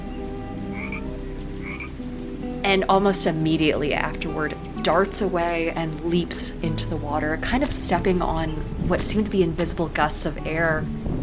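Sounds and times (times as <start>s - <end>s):
frogs croaking near water and a rock: 0.0s - 3.2s
frog chirping calls: 0.1s - 2.3s
speech: 2.6s - 11.1s.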